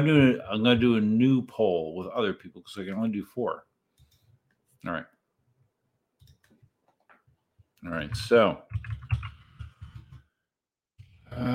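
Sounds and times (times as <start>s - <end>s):
speech: 0.0s - 3.7s, 4.8s - 5.2s, 7.8s - 9.3s, 11.4s - 11.5s
typing on a computer keyboard: 8.1s - 10.2s.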